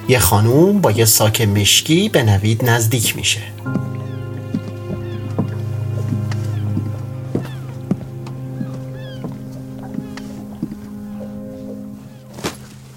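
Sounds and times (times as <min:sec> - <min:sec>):
speech: 0:00.1 - 0:04.1
woman's footsteps crossing moored boats at sea: 0:03.0 - 0:12.9.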